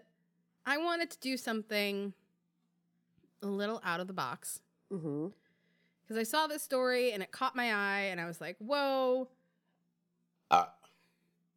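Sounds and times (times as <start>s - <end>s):
speech: 0.7s - 2.2s, 3.4s - 5.4s, 6.1s - 9.4s, 10.5s - 10.8s
person burping: 10.5s - 10.9s.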